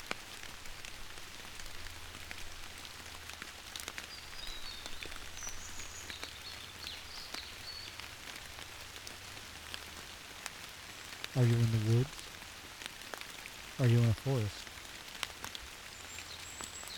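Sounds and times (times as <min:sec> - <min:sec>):
steady rain pattering on leaves and surfaces: 0:00.0 - 0:16.9
faint birds chirping: 0:04.1 - 0:08.2, 0:11.4 - 0:12.4, 0:13.8 - 0:14.7, 0:15.8 - 0:16.9
speech: 0:11.4 - 0:12.2, 0:13.8 - 0:14.7.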